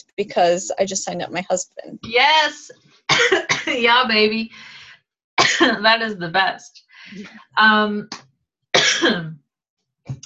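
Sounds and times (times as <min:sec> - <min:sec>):
speech: 0:00.2 - 0:04.8, 0:05.4 - 0:08.3, 0:08.9 - 0:09.4
person coughing harshly from smoke: 0:03.1 - 0:03.8, 0:05.4 - 0:05.8, 0:08.8 - 0:09.3.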